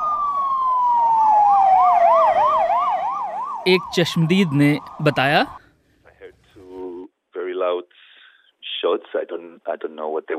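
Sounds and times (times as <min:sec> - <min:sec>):
police vehicle sirens wailing during a police operation in a Belgian city: 0:00.0 - 0:05.6
speech: 0:03.6 - 0:05.6.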